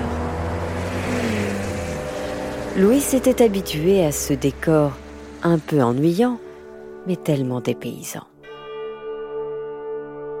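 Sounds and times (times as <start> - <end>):
cars and trucks passing on a straight desert road: 0.0 - 7.0
speech: 2.8 - 6.4, 7.0 - 8.3.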